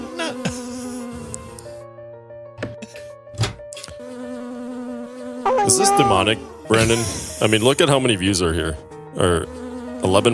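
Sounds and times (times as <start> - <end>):
bee buzzing in a played video: 0.0 - 1.9, 3.8 - 7.8, 9.1 - 10.3
speech: 5.7 - 10.3.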